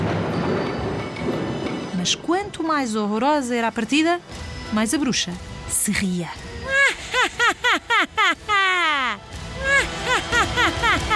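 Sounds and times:
thunder rumbling: 0.0s - 3.8s
speech: 2.0s - 6.5s
laughter: 6.7s - 11.1s.

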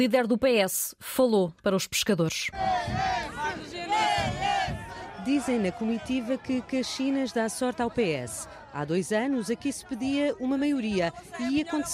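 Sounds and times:
speech: 0.0s - 3.3s, 5.2s - 11.9s
crowd of Socialist Party supporters chanting by the sea in Caxinas, Portugal: 2.5s - 11.9s.

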